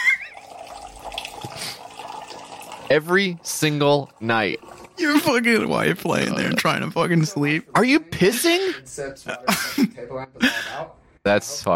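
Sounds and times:
water dispenser being tested, pouring water: 0:00.2 - 0:07.0
speech: 0:02.9 - 0:11.7.

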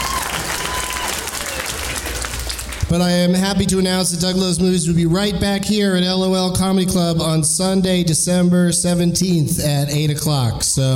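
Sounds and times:
audience applause in a comedy club: 0:00.0 - 0:02.9
speech: 0:02.9 - 0:10.9.

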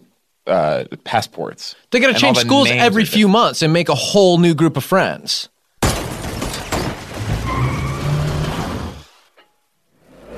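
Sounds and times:
speech: 0:00.5 - 0:05.5
car roaring and skidding with a squealing tone: 0:07.1 - 0:09.2.

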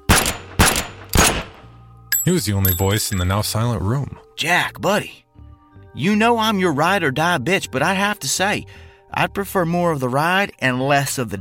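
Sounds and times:
gunshots fired into ceiling: 0:00.0 - 0:01.7
speech: 0:02.3 - 0:05.2, 0:06.0 - 0:11.3.

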